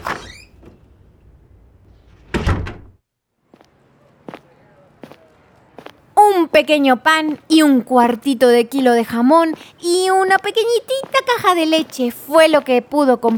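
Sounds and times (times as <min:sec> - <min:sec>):
door swinging open and closing with a rattling thud: 0:00.0 - 0:03.0
light scattered steps or taps: 0:03.5 - 0:13.3
speech: 0:06.6 - 0:13.3.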